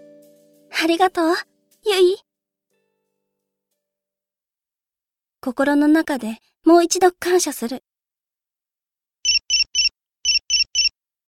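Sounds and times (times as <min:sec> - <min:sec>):
speech: 0:00.8 - 0:02.2, 0:05.4 - 0:07.9
mobile phone ringing with electronic chirps: 0:09.3 - 0:10.9.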